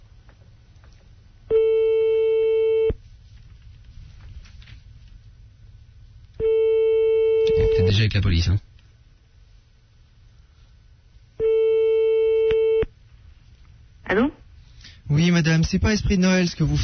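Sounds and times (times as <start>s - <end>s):
telephone busy signal on a redial: 1.5s - 3.0s, 6.4s - 7.9s, 11.4s - 12.9s
speech: 8.4s - 8.7s, 15.7s - 16.8s.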